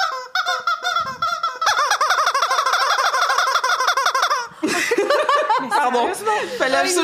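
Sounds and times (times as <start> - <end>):
squeaky rubber chicken toy squawking as a quiz buzzer: 0.0 - 4.6
laughter: 4.4 - 6.8
speech: 5.9 - 7.0.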